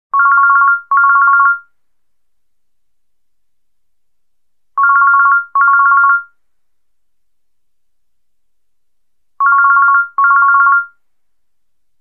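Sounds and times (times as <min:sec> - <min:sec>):
old Nokia phone tone: 0:00.2 - 0:01.7, 0:04.8 - 0:06.3, 0:09.4 - 0:11.0.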